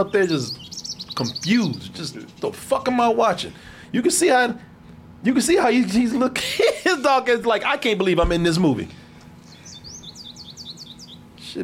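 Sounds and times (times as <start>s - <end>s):
speech: 0.0s - 0.6s, 1.2s - 9.0s
birds tweeting in the background of a film: 0.0s - 5.5s, 6.7s - 11.6s.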